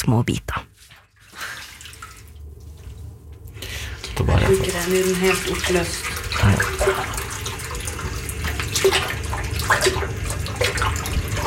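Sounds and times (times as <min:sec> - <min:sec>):
speech: 0:00.0 - 0:00.6, 0:04.2 - 0:07.2
warm water poured into sink over papers: 0:01.3 - 0:02.4, 0:03.9 - 0:11.4.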